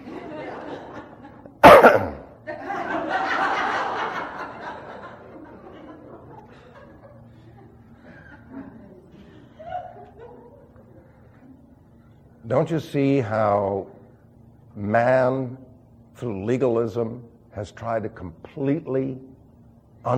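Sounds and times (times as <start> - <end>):
laughter: 0.0 - 11.6
sharp loud cough with rough breathy rasp: 1.6 - 2.4
speech: 12.5 - 14.0, 14.8 - 15.6, 16.2 - 19.3.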